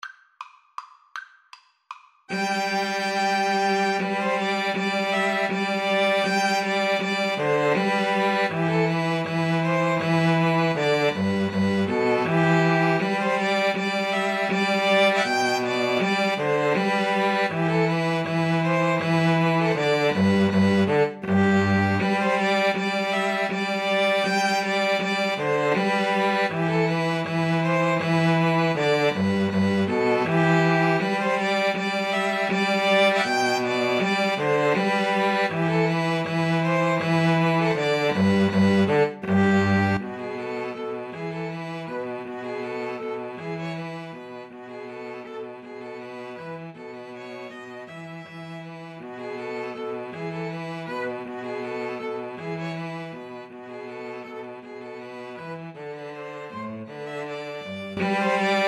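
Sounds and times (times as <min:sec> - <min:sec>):
string trio of two violins and cello playing: 0:02.3 - 0:58.6.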